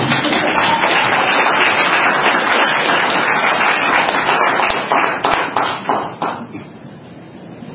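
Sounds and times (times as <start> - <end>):
crowd applauding: 0.0 - 6.5.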